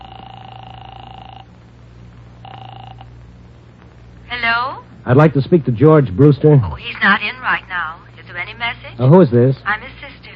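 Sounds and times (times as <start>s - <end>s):
telephone ringing tone heard down the line: 0.0s - 1.6s, 2.4s - 3.2s
low constant hum of the telephone connection: 0.0s - 10.3s
speech: 4.3s - 9.9s.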